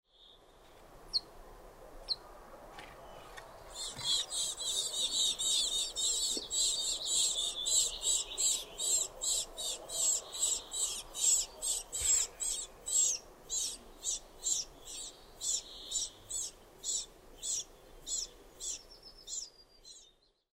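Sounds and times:
Siberian tit calling: 3.7 - 19.5.

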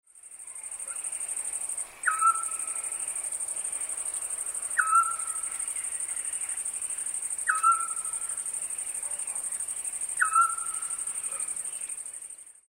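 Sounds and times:
scops owl calling: 2.0 - 2.7, 4.8 - 5.4, 7.4 - 8.3, 10.2 - 11.0.

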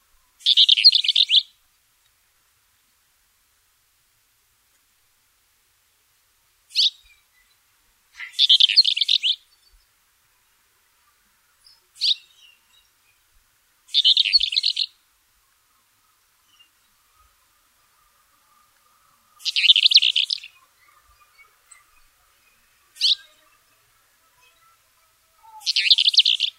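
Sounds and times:
Ruppell's warbler singing: 0.4 - 1.6, 6.7 - 26.5.

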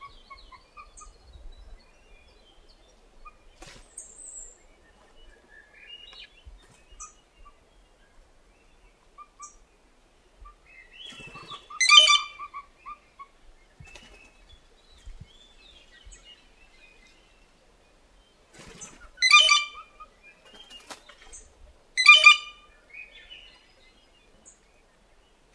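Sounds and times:
other birds chirping quietly: 0.0 - 25.5
blue jay giving grating buzzy squawks: 11.4 - 12.5, 19.2 - 19.8, 22.0 - 22.6.

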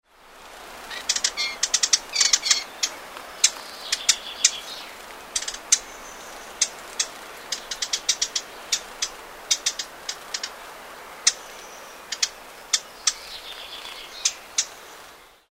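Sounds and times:
eastern subalpine warbler: 0.9 - 15.4.

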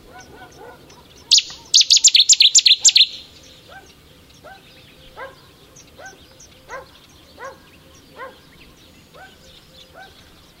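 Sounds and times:
Cetti's warbler song burst: 0.2 - 10.5.

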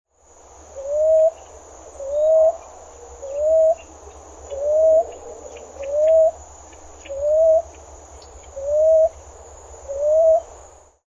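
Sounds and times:
common ground dove calling: 0.8 - 6.4, 7.0 - 9.2, 9.9 - 10.5.

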